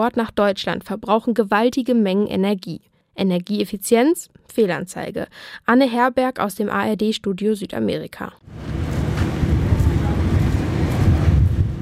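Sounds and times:
speech: 0.0 - 8.8
strong wind gusts over open steppe: 8.5 - 11.8.

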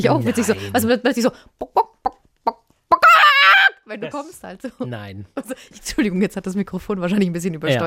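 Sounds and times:
laughter: 0.0 - 0.9
speech: 0.0 - 2.6, 3.9 - 7.8
person imitating a chicken clucking and cackling: 1.6 - 3.8.

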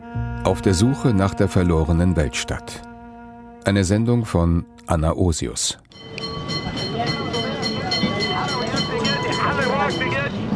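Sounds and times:
speech: 0.4 - 2.9, 3.6 - 6.8
trams rattling over cobblestones in the station district of Alexandria Egypt: 6.0 - 10.5
indistinct voices murmuring: 6.1 - 10.5.

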